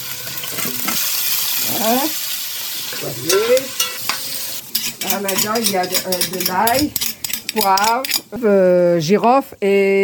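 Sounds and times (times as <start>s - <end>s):
meat sizzling in a cooking pot over a wood fire: 0.0s - 8.2s
speech: 1.8s - 2.2s, 3.0s - 3.9s, 4.9s - 10.0s
stirring meat in a cooking pot over a wood fire: 3.3s - 8.4s.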